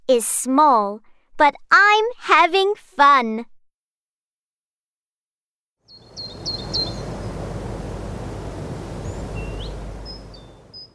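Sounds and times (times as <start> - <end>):
speech: 0.1 - 3.5
birds chirping and whistling in the trees: 5.9 - 10.9
wind or rustling leaves: 5.9 - 10.9.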